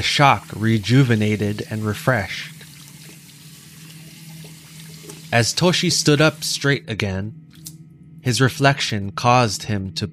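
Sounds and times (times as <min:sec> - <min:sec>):
speech: 0:00.0 - 0:02.6, 0:05.3 - 0:07.4, 0:08.2 - 0:10.1
water running and splashing into a bathroom sink: 0:00.0 - 0:05.6
faint low hum: 0:00.0 - 0:10.1.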